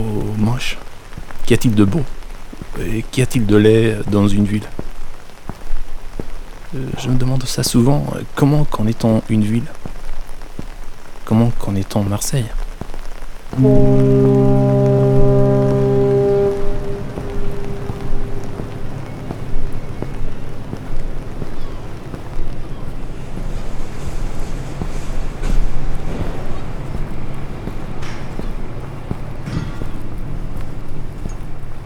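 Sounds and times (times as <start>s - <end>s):
speech: 0.0s - 0.9s, 1.5s - 2.2s, 2.8s - 4.8s, 6.7s - 9.8s, 11.3s - 12.6s, 13.6s - 14.8s
wind at the shore in Marseille: 0.0s - 31.8s
deep harmonic horn-like tone: 13.6s - 21.4s, 23.6s - 31.8s
sea at the shore in Marseille: 13.6s - 31.8s.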